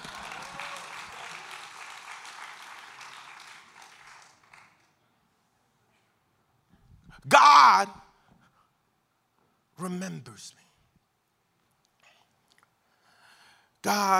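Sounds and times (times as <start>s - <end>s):
crowd applauding: 0.0s - 5.0s
speech: 10.0s - 10.6s, 13.9s - 14.1s.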